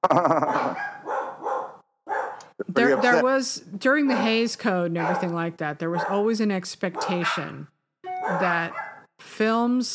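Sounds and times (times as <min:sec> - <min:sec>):
speech: 0:00.0 - 0:00.9, 0:02.7 - 0:07.7, 0:08.3 - 0:09.9
dog barking: 0:00.4 - 0:03.2, 0:04.1 - 0:04.4, 0:05.0 - 0:05.3, 0:06.0 - 0:06.3, 0:07.0 - 0:07.6, 0:08.2 - 0:09.1.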